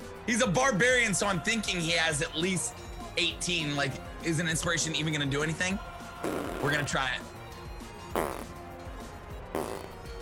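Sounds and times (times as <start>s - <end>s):
speech: 0.3s - 7.4s, 8.2s - 8.5s
fart sound effect: 6.2s - 6.9s, 8.1s - 8.6s, 9.5s - 10.0s.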